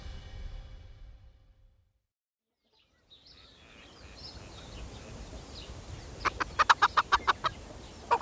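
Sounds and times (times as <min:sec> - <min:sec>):
chickens clucking as they are called to feed on corn: 0:03.5 - 0:08.2.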